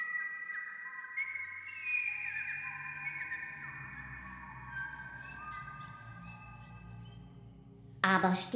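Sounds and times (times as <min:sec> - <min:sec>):
sustained wavering whistled tones: 0:00.0 - 0:07.5
low humming drone: 0:03.8 - 0:08.5
speech: 0:08.0 - 0:08.5.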